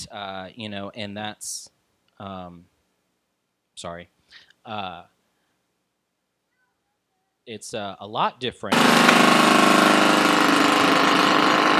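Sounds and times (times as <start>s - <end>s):
speech: 0.1s - 2.7s, 3.8s - 5.2s, 7.5s - 10.2s
jackhammer pounding: 8.7s - 11.7s
mechanical engine-like drone: 8.7s - 11.7s.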